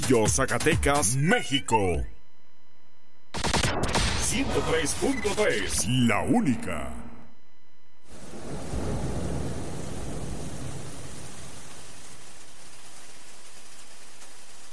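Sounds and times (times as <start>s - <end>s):
speech: 0.1s - 2.1s, 4.3s - 7.0s
deep rumble of thunder: 8.1s - 14.7s
steady rain pouring down: 8.1s - 14.7s.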